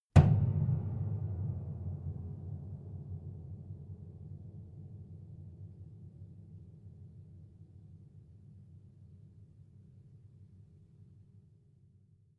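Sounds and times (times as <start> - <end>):
piano body hit: 0.2 - 1.9.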